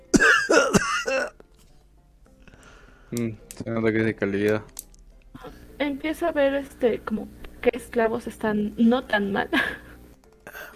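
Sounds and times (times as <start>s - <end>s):
harsh throaty coughing: 0.1s - 1.4s, 10.5s - 10.7s
speech: 3.1s - 4.8s, 5.4s - 9.8s.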